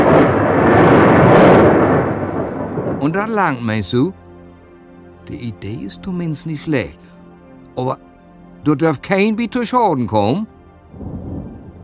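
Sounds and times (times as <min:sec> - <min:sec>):
thunder rumbling from a thunderstorm: 0:00.0 - 0:04.0, 0:10.9 - 0:11.8
speech: 0:03.1 - 0:04.2, 0:05.2 - 0:07.1, 0:07.8 - 0:11.1.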